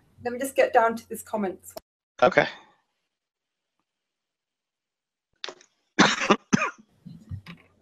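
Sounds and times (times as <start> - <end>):
speech: 0.2 - 2.6
low throat-clearing rumbles: 6.0 - 6.8
wet chesty coughing: 6.0 - 6.9.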